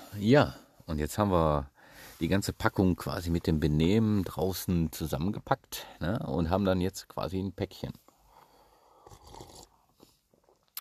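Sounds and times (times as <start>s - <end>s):
speech: 0.2s - 8.0s
slurping hot tea: 9.0s - 10.0s
small mouth and swallowing sounds: 9.0s - 10.7s.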